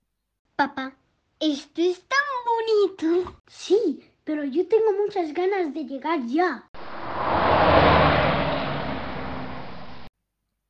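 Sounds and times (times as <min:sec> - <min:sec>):
speech: 0:00.6 - 0:06.8
car engine humming while driving toward a forest at nightfall: 0:06.8 - 0:10.1.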